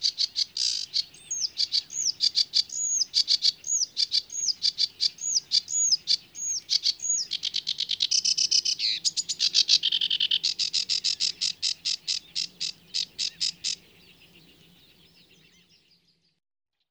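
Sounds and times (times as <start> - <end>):
sedge warbler singing: 0.0 - 16.3.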